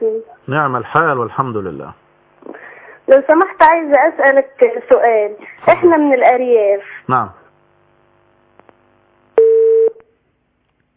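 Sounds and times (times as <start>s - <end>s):
speech: 0.1s - 2.0s, 3.1s - 7.4s
telephone tone after a phone-in call is cut off: 9.4s - 10.0s.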